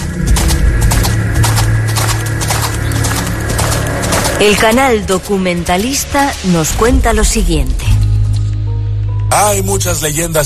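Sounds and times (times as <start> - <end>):
horse hooves clip-clopping in a brisk rhythm: 0.0 - 7.4
constant low rumbling hum: 0.0 - 9.9
speech: 4.4 - 8.0, 9.3 - 10.4.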